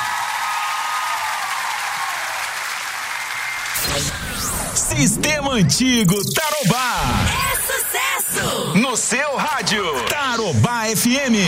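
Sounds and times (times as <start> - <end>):
crowd applause: 0.0 - 3.9
speech: 4.9 - 7.3, 8.2 - 11.4.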